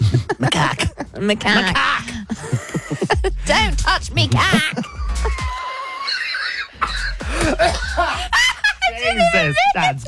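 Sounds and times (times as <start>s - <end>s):
heavy hacking coughing fit: 0.0s - 3.5s, 4.4s - 8.4s
laughing or wheezing: 0.0s - 3.6s, 4.2s - 9.4s
speech: 1.2s - 2.0s, 3.2s - 5.4s, 7.4s - 8.3s, 9.1s - 10.0s.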